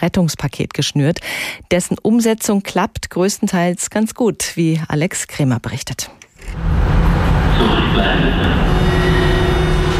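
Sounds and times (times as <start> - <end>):
speech: 0.0 - 8.9
whining tones inside a moving underground train: 6.4 - 9.9
rumble inside a moving underground train: 6.6 - 9.9.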